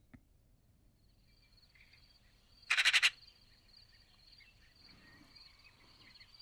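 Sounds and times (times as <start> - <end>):
Eurasian magpie Pica pica chattering in Tuscany Italy: 2.7 - 3.1.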